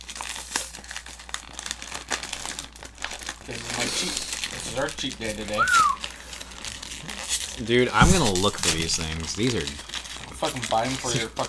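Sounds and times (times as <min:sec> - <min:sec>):
sticker ripped off a snack pack with crinkly plastic tearing: 0:00.0 - 0:11.4
speech: 0:03.5 - 0:06.0, 0:07.6 - 0:11.4.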